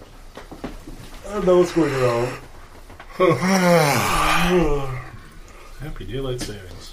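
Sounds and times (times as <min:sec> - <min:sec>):
speech: 0:01.3 - 0:02.5, 0:03.2 - 0:05.0, 0:05.8 - 0:06.9
person yawning: 0:03.1 - 0:05.3.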